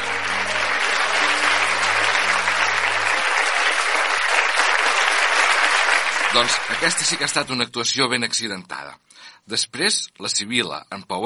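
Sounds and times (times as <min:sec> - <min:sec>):
loud sustained audience applause: 0:00.0 - 0:07.6
speech: 0:06.4 - 0:11.2.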